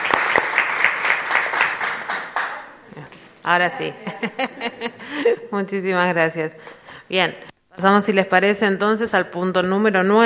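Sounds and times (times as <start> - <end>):
room full of people clapping in a council chamber: 0.0 - 2.7
speech: 3.4 - 10.2
laughter: 3.8 - 5.5.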